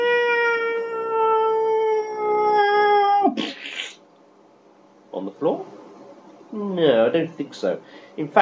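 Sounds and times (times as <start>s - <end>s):
person imitating a cat meow: 0.0s - 4.0s
speech: 6.8s - 8.4s.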